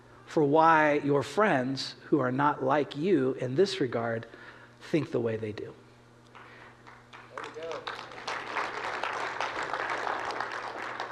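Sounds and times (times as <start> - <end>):
speech: 0.4 - 5.8
audience at a sermon applauding: 6.4 - 11.1.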